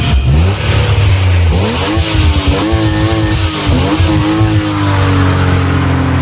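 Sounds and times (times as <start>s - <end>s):
motorized vehicle engine accelerating as on a racing circuit: 0.0s - 6.2s.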